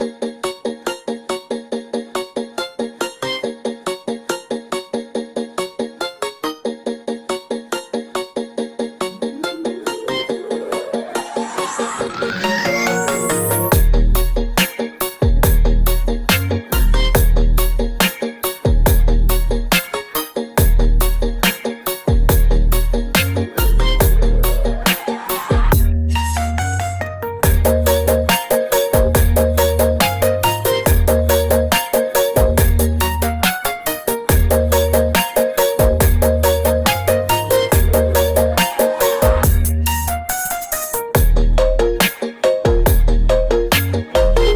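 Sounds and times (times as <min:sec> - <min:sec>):
music: 0:00.0 - 0:44.5.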